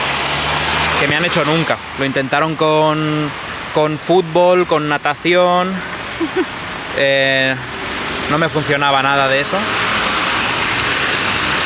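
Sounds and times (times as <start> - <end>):
passing car traffic on a city street: 0.0 - 11.6
speech: 1.0 - 7.7, 8.3 - 9.9
laughter: 6.2 - 6.5.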